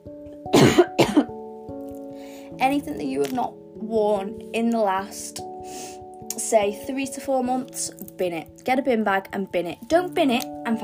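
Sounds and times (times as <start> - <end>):
person coughing: 0.5 - 1.4
speech: 2.6 - 10.8.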